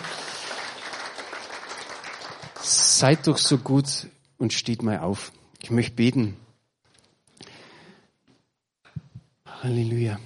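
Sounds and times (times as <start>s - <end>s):
crowd applauding: 0.0s - 3.7s
speech: 2.6s - 6.4s, 9.6s - 10.2s.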